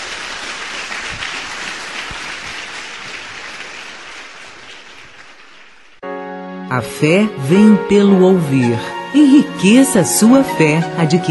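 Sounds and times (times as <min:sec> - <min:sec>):
church congregation applauding during a worship service: 0:00.0 - 0:06.1
speech: 0:06.7 - 0:11.2.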